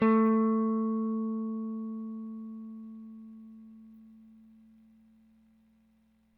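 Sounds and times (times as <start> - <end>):
Rickenbacker bass guitar: 0.0 - 4.0.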